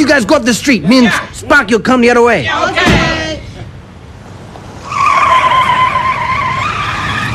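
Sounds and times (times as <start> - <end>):
speech: 0.1 - 3.2
car tires screeching as a car turns around by a restaurant: 2.4 - 7.3.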